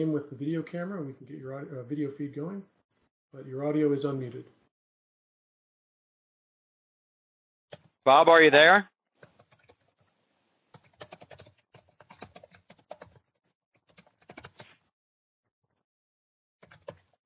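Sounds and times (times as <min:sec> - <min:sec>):
speech: 0:00.0 - 0:04.6, 0:08.0 - 0:08.9
typing on a computer keyboard over an online video call: 0:07.7 - 0:08.0, 0:09.2 - 0:10.1, 0:10.7 - 0:14.8, 0:16.6 - 0:17.2.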